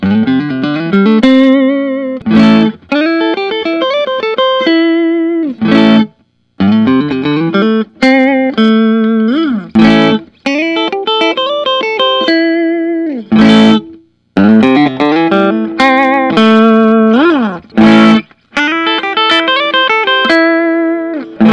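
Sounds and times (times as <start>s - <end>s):
Fender Custom Shop 60 Telecaster electric guitar: 0.0s - 21.5s.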